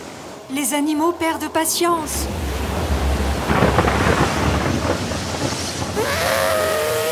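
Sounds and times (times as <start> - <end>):
speech: 0.5 - 2.5
deep rolling thunder: 2.0 - 7.1
heavy rain pouring during a storm: 2.0 - 7.1.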